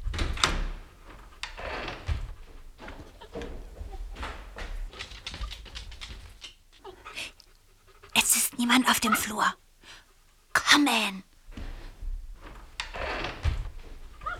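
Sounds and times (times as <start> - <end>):
door creaking open: 0.0 - 6.6, 11.5 - 14.3
soft thuds: 0.0 - 6.7, 11.4 - 14.3
faint rustling: 0.0 - 10.6, 11.2 - 14.3
speech: 8.7 - 9.6, 10.8 - 11.3.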